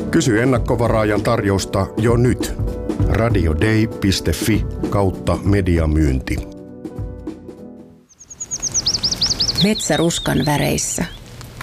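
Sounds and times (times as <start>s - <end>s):
speech: 0.1s - 6.5s, 9.6s - 11.2s
flocks of birds gathered for autumn migration chirping: 8.1s - 11.3s.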